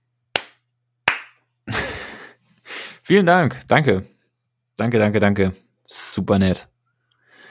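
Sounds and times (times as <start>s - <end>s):
sharp hand claps: 0.3s - 1.4s
speech: 3.1s - 4.1s, 4.8s - 6.7s.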